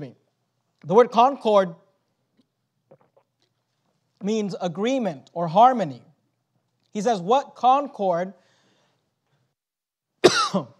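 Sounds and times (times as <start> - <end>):
speech: 0.8 - 1.8, 4.2 - 6.1, 6.9 - 8.4, 10.3 - 10.7
man clearing throat during a sermon: 10.2 - 10.7
man coughing during a sermon: 10.2 - 10.7.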